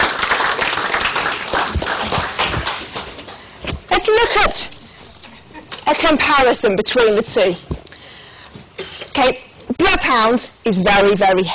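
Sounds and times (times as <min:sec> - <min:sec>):
audience applause at a talk: 0:00.0 - 0:03.5
speech: 0:04.4 - 0:04.7, 0:05.9 - 0:07.7, 0:09.2 - 0:09.4, 0:10.0 - 0:11.5.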